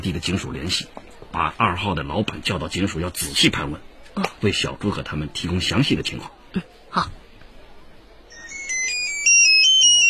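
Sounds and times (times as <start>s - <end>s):
speech: 0.0s - 7.2s
mobile phone ringtone with high electronic melody: 8.3s - 10.0s.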